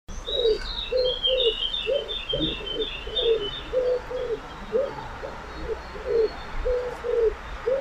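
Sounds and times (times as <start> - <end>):
wood pigeon calling: 0.1 - 7.7.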